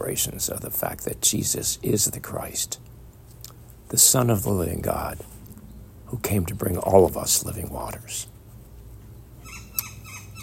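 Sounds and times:
speech: 0.0s - 3.0s, 3.9s - 5.4s, 6.1s - 8.4s
low outdoor rumble: 0.0s - 10.4s
birds chirping and singing: 9.1s - 10.4s
sharp loud bird call: 9.4s - 10.4s.

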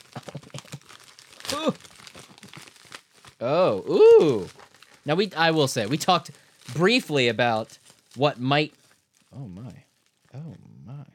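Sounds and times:
package wrapping crinkling and tearing as it is opened: 0.0s - 10.4s
speech: 1.5s - 1.9s, 3.4s - 8.8s.

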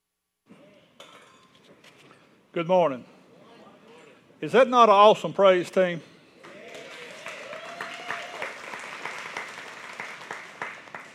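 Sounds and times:
speech: 2.6s - 3.1s, 4.4s - 6.1s
congregation applauding: 6.4s - 11.1s.

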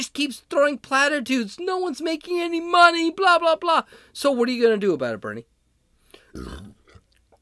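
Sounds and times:
speech: 0.0s - 5.5s, 6.3s - 6.7s
person belching while drinking: 6.4s - 7.1s.

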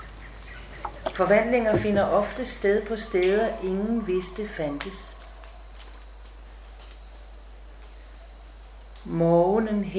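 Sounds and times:
cicada buzzing: 0.0s - 9.9s
speech: 1.2s - 5.2s, 9.1s - 9.9s.

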